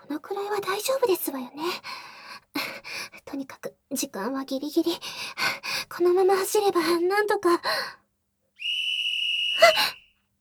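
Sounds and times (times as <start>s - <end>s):
speech: 0.2s - 2.1s, 3.3s - 8.0s, 9.6s - 9.9s
whistle blast: 8.6s - 10.1s.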